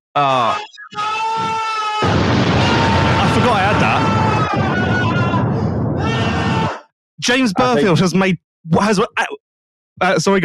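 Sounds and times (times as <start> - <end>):
speech: 0.2 - 1.1, 7.2 - 9.4, 10.0 - 10.4
man screaming sound effect from soundboard: 0.2 - 6.8.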